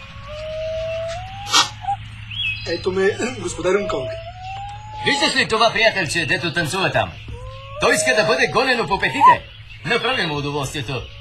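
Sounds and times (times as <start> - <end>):
yellow dog whining: 0.0 - 2.0, 2.9 - 5.8, 7.2 - 9.5, 11.0 - 11.2
speech: 2.6 - 4.3, 5.0 - 11.2.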